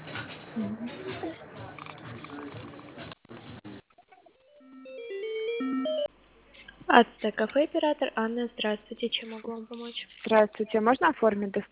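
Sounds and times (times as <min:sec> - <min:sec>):
speech: 0:00.6 - 0:01.4, 0:06.9 - 0:11.7
telephone ringing tone melody while a call is transferred: 0:04.4 - 0:06.1.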